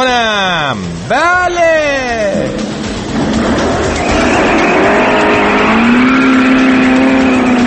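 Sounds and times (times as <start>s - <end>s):
speech: 0.0s - 2.7s
old badly worn Paykan car engine running loudly over 80 decibels: 2.3s - 7.6s.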